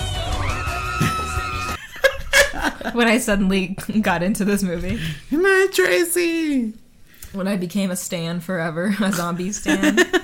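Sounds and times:
person screaming: 0:00.2 - 0:01.8
laughter: 0:01.0 - 0:03.1, 0:09.4 - 0:10.2
speech: 0:02.8 - 0:10.2.

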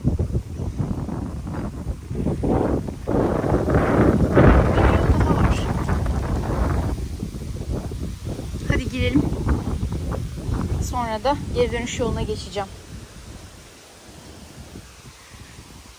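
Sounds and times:
outdoor wind buffeting the microphone: 0:00.0 - 0:15.9
speech: 0:11.2 - 0:12.8.

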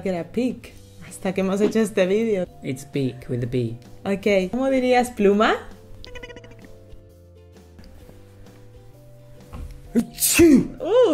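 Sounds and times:
speech: 0:00.0 - 0:05.7
sneeze: 0:10.0 - 0:10.8.

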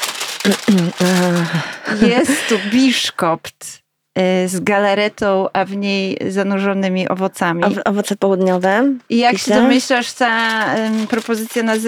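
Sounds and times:
paper wrapping crinkling and rustling: 0:00.0 - 0:02.0, 0:07.6 - 0:11.8
speech: 0:00.4 - 0:11.8.

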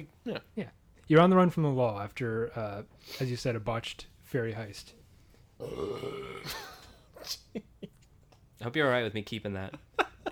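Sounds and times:
speech: 0:00.0 - 0:05.0, 0:05.6 - 0:07.7, 0:08.6 - 0:10.3
long loud burp: 0:05.6 - 0:06.7.

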